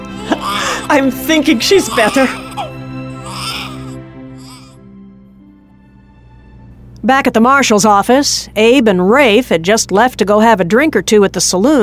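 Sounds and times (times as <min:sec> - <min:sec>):
infant crying in strained high-pitched wails: 0:00.0 - 0:04.8
speech: 0:00.9 - 0:02.4, 0:07.1 - 0:11.8.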